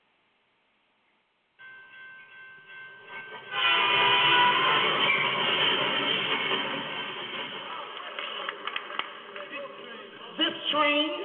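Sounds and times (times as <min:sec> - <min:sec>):
train bell ringing: 0:01.6 - 0:07.4
train with rolling cars rumbling: 0:02.3 - 0:09.3.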